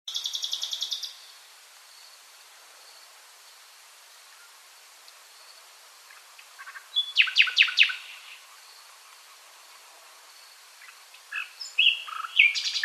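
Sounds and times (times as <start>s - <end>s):
common nightingale Luscinia megarhynchos singing: 0.1s - 1.4s, 5.4s - 9.4s, 10.4s - 12.8s.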